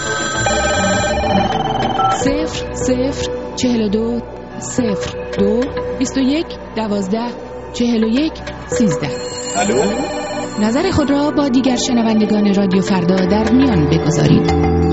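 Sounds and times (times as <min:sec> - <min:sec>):
telephone ringing with electronic tones: 0:00.0 - 0:02.5, 0:08.7 - 0:11.3
speech: 0:02.2 - 0:14.8.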